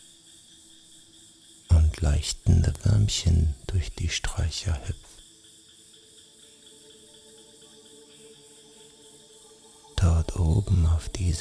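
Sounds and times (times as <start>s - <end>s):
chorus of crickets chirping: 0.0s - 11.3s
speech: 2.0s - 5.1s, 10.4s - 11.3s.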